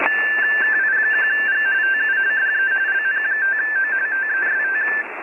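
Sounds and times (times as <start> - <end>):
RTTY radioteletype signal: 0.0 - 5.1.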